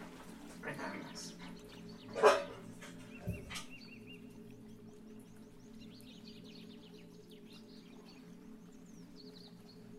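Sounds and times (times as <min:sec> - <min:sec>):
faint chirps: 0:00.6 - 0:09.9
female dog short stifled woof: 0:02.1 - 0:03.6.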